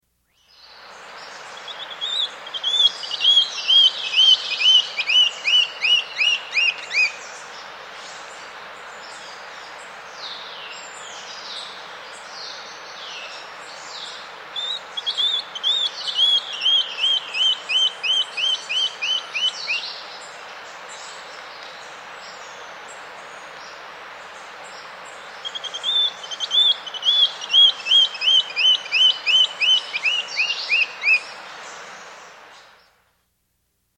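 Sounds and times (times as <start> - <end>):
Brown-billed Scythebill in South America: 0.5 - 7.4, 13.7 - 22.6, 24.4 - 32.8.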